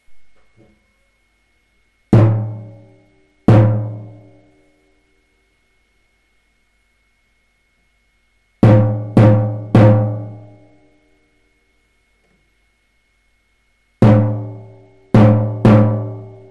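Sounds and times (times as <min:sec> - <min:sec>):
drum rhythms: 0:02.1 - 0:02.9, 0:03.5 - 0:04.2, 0:08.6 - 0:10.4, 0:14.0 - 0:16.4.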